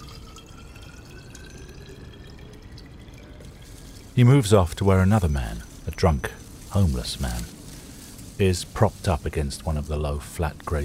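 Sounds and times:
liquid pouring into a bottle: 0.0 - 4.8
speech: 4.2 - 7.6, 8.4 - 10.8.

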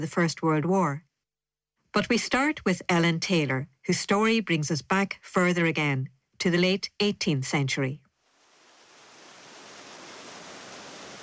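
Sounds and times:
speech: 0.0 - 1.1, 2.0 - 8.0
River Barrow flowing by a weir in County Carlow Ireland: 8.3 - 11.2.

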